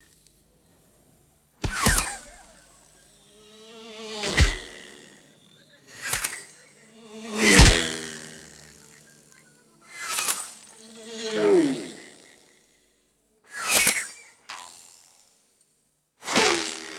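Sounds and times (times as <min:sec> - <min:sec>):
arrows landing: 0:01.6 - 0:02.6, 0:04.2 - 0:04.9, 0:07.4 - 0:08.6
buzzing arrows flying past: 0:01.6 - 0:12.7, 0:13.5 - 0:15.3, 0:16.2 - 0:16.9.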